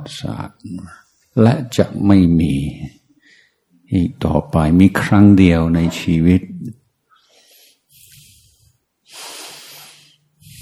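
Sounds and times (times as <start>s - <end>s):
speech: 0.0s - 3.0s, 3.9s - 6.8s
deep breathing in through the nose: 7.1s - 10.5s.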